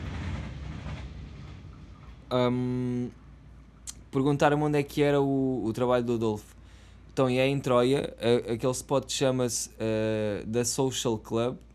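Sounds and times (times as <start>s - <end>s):
train rumbling past: 0.0s - 5.1s
speech: 2.3s - 3.2s, 3.9s - 6.6s, 7.2s - 11.7s.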